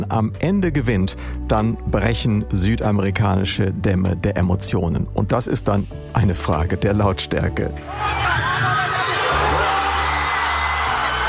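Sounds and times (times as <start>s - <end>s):
speech: 0.1s - 8.8s
huge crowd of football fans cheering a goal: 7.9s - 11.2s
scattered whoops and screams: 7.9s - 11.2s.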